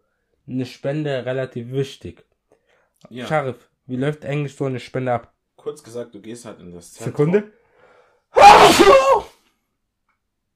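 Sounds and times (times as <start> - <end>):
speech: 0.5 - 2.3, 3.0 - 7.6, 8.3 - 9.2
loud sneeze: 8.4 - 9.3.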